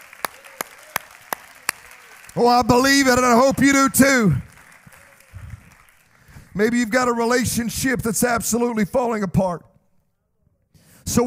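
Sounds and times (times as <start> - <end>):
hands clapping in a steady rhythm: 0.0 - 6.6
speech: 2.3 - 4.5, 6.6 - 9.7.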